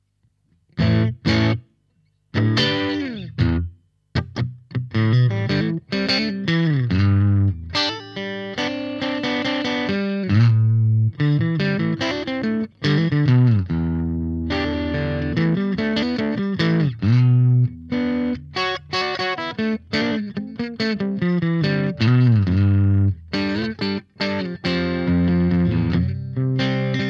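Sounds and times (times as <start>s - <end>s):
clean guitar tone through a triode amplifier: 0.8s - 27.0s.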